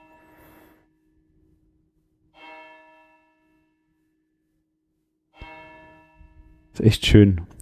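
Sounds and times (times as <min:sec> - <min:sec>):
church bells ringing in slow strokes: 0:00.0 - 0:00.7, 0:02.3 - 0:03.9, 0:05.3 - 0:06.8
speech: 0:06.8 - 0:07.6.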